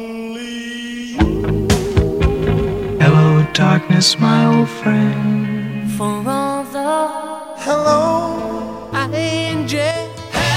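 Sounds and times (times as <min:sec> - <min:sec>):
retro jingle: 0:01.2 - 0:06.3, 0:07.6 - 0:10.3.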